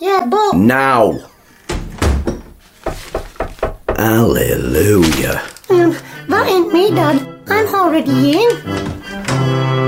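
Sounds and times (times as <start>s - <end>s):
speech: 0.0s - 1.3s, 4.0s - 9.8s
heavy door slamming shut: 1.6s - 4.3s
soft knocks or rattles: 1.6s - 4.3s.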